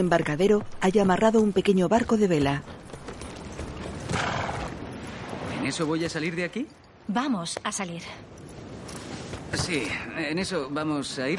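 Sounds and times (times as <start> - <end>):
speech: 0.0 - 2.8, 5.6 - 8.4, 9.5 - 11.3
horses arriving on a narrow cove: 0.0 - 5.2.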